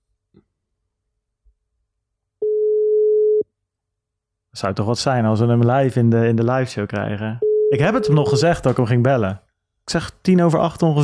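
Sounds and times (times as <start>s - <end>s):
telephone ringing tone while a call is dialed: 2.4s - 3.4s, 7.4s - 8.5s
speech: 4.6s - 11.0s.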